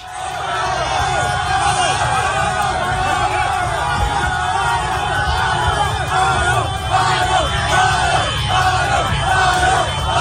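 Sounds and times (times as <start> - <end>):
crowd cheering and shouting outdoors at a football celebration in Conakry Guinea: 0.0 - 10.1
overlapping yells and whoops: 0.0 - 10.1.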